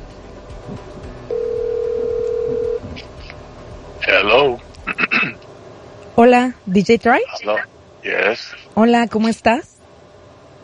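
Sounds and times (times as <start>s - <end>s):
hum: 0.0s - 10.6s
telephone tone while redialing a rejected call: 1.3s - 2.8s
speech: 6.2s - 9.7s.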